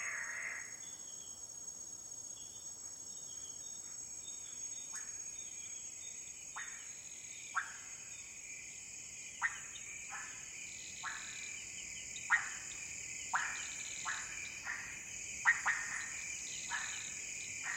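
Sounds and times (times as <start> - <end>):
frogs calling in a humid montane rainforest at night in Ethiopia: 0.0 - 0.8, 6.5 - 8.3, 9.3 - 17.7
insects whining in an Ethiopian montane rainforest: 0.0 - 17.7.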